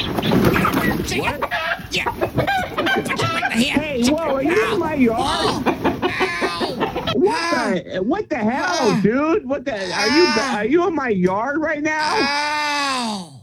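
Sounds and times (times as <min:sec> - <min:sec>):
chickens clucking and squawking: 0:00.0 - 0:08.1
speech: 0:01.0 - 0:01.6, 0:07.9 - 0:13.3
man talking loudly: 0:01.0 - 0:13.4
laughter: 0:01.2 - 0:09.2, 0:09.8 - 0:10.6.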